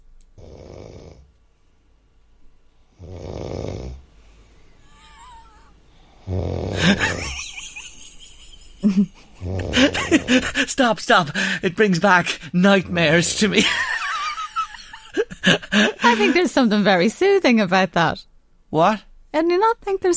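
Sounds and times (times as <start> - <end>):
person snoring while asleep: 0.4 - 1.3, 2.9 - 4.0, 4.8 - 7.4, 9.4 - 10.7
laughter: 6.8 - 10.8, 13.4 - 16.5
speech: 10.1 - 13.9, 15.4 - 20.1.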